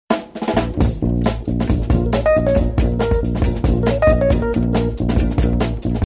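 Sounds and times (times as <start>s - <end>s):
beat: 0.4s - 6.0s
bass: 0.5s - 6.0s.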